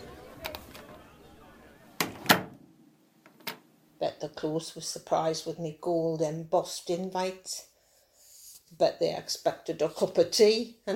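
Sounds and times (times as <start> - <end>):
door swinging shut with clicks, a bang and a thud: 2.0 - 2.6
speech: 4.0 - 7.7, 8.8 - 10.9.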